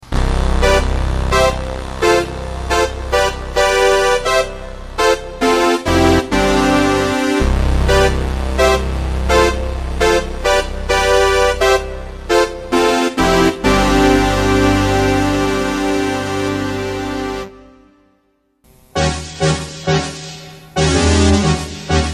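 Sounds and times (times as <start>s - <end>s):
Kurzweil 250 synthesizer brass: 0.0s - 22.1s.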